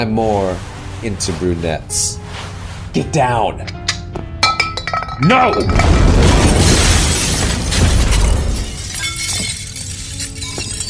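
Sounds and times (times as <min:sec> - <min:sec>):
speech: 0:00.0 - 0:04.2, 0:05.2 - 0:06.2
crashing, shattering debris: 0:04.7 - 0:10.8
grenade explosion: 0:05.8 - 0:08.6.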